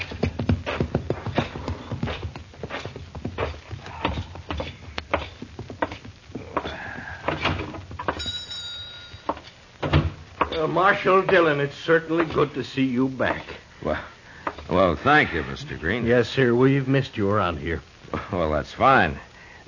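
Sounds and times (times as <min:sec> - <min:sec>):
horse hooves clip-clopping on hard ground: 0:00.0 - 0:12.6
speech: 0:10.6 - 0:14.1, 0:14.7 - 0:19.6.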